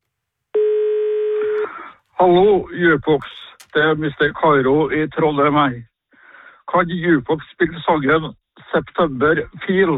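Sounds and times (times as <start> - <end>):
telephone line tone on a phone-in request line: 0.5 - 1.8
speech: 2.2 - 5.9, 6.7 - 9.9.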